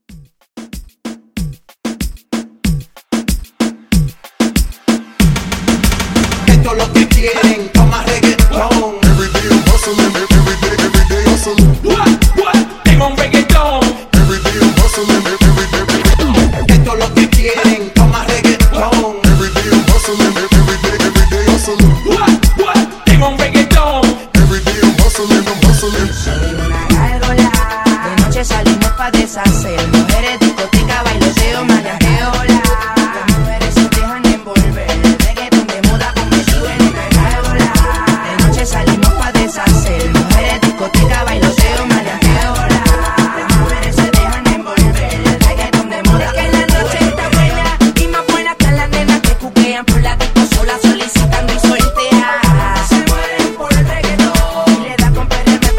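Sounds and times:
reggaeton pop drum beat: 0.0 - 55.7.

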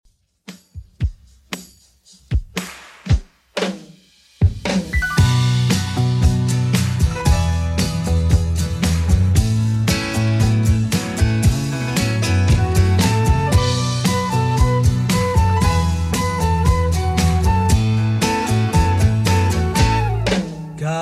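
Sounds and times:
70s drum beat at 115 bpm: 0.1 - 20.9.

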